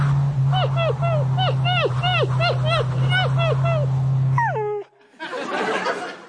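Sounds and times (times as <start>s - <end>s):
moving car droning: 0.0s - 5.8s
laughter: 0.6s - 3.9s, 4.9s - 6.2s
dog whimpering strapped to the roof of a moving car: 0.6s - 5.0s.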